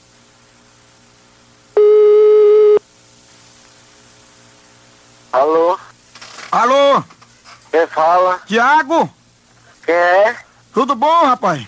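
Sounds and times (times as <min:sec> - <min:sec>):
faint hiss: 0:00.0 - 0:11.6
telephone ringback tone on an outgoing call: 0:01.8 - 0:02.8
speech: 0:05.3 - 0:05.8, 0:07.8 - 0:09.2, 0:09.9 - 0:11.6.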